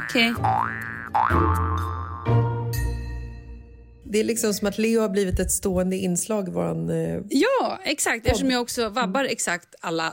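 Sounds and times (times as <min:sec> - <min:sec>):
speech: 0:00.0 - 0:02.4, 0:04.1 - 0:10.1
springy cartoon boing sound effect: 0:00.0 - 0:02.4.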